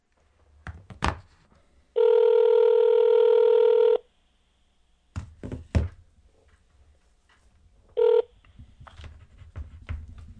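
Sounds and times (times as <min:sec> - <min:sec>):
landline telephone electronic ring: 0:02.0 - 0:04.0, 0:08.0 - 0:08.4.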